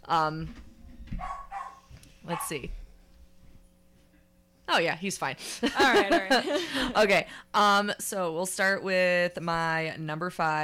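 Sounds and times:
speech: 0.0 - 0.6, 2.3 - 2.8, 4.7 - 10.6
dog barking: 1.2 - 2.6
laughter: 5.6 - 7.0.

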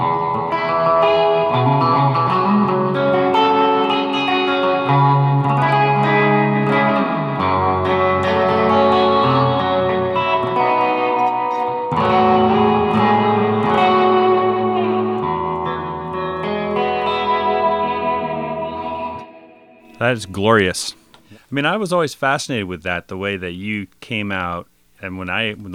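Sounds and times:
reverb-drenched surf electric guitar through amplifier: 0.0 - 20.2
speech: 20.1 - 25.7.

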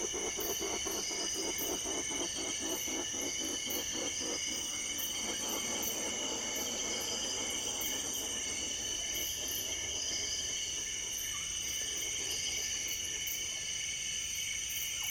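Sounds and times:
rapid pulsing bird call: 0.0 - 13.2
steady shrill high-pitched whine and hiss: 0.0 - 15.0.

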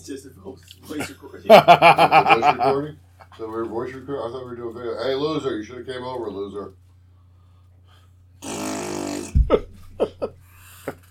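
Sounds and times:
speech: 0.0 - 6.8, 9.5 - 10.4
laughter: 1.5 - 2.9, 9.3 - 11.0
short sharp voiced bursts: 8.4 - 9.5
loud buzzy fart noise: 8.4 - 10.3.

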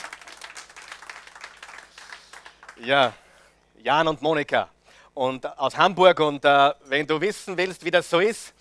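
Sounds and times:
audience in Austria applauding: 0.0 - 3.2
speech: 2.8 - 3.2, 3.8 - 8.5.

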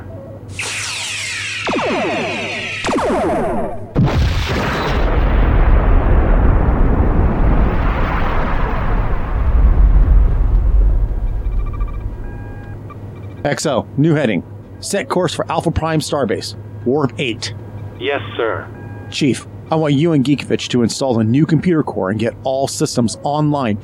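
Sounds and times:
starship firing phasers and torpedoes: 0.5 - 5.1
ship exploding in a deep rumbling roar: 1.7 - 12.9
speech: 13.5 - 23.8.

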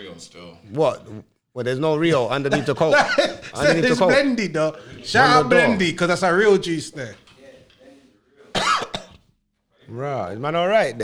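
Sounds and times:
speech: 0.2 - 7.2, 9.9 - 11.0
laughter: 2.1 - 7.3
cough: 2.5 - 4.1, 8.5 - 9.3.

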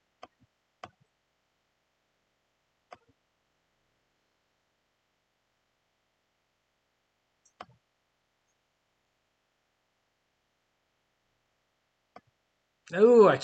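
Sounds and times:
sharp computer mouse clicks: 0.2 - 1.0, 2.9 - 3.2, 7.4 - 7.8, 12.1 - 12.4
person talking: 12.9 - 13.4.

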